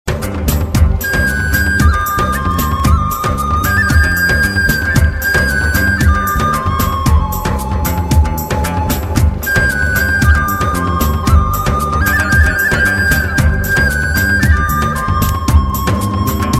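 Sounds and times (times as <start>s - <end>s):
digital flute: 0.8s - 16.5s.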